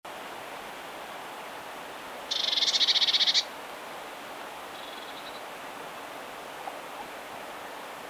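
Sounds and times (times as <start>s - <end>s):
Eurasian blue tit Cyanistes caeruleus churring rattle: 2.3s - 3.5s.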